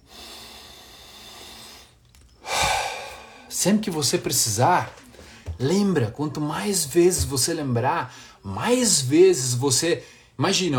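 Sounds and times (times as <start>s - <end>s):
person exhaling during a relaxation breathing exercise: 0.0s - 3.6s
speech: 3.6s - 5.0s, 5.6s - 10.7s.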